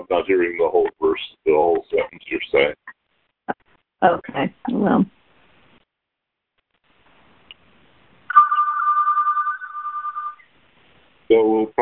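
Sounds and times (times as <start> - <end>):
speech: 0.0 - 2.9, 3.5 - 5.2, 11.3 - 11.7
mobile phone ringing with a bright warbling trill: 8.3 - 10.5.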